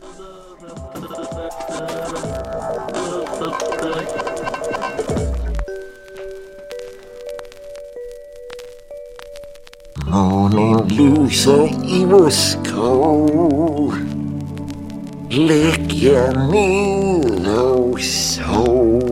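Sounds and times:
radio show bumper jingle: 0:00.6 - 0:07.0
sustained tones ringing quietly: 0:00.6 - 0:09.8
speech: 0:10.2 - 0:14.0, 0:15.4 - 0:19.0.

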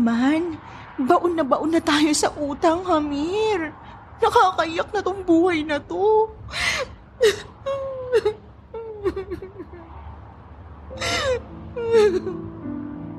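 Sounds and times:
speech: 0:00.0 - 0:08.4, 0:09.0 - 0:09.8, 0:11.0 - 0:12.6
woman crying and whimpering: 0:06.4 - 0:09.9, 0:10.9 - 0:12.7.

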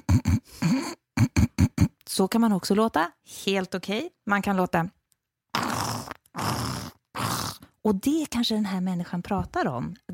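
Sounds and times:
person imitating a baby's snorey congested breathing: 0:00.0 - 0:02.0, 0:05.5 - 0:07.8
speech: 0:02.2 - 0:05.0, 0:07.9 - 0:10.1.

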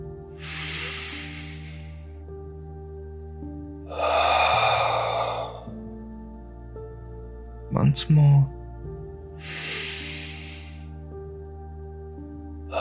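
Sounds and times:
soft steady musical drone: 0:00.0 - 0:12.7
deep breath in and out: 0:00.3 - 0:02.1, 0:03.9 - 0:05.8, 0:09.4 - 0:11.0
speech: 0:07.8 - 0:08.6.

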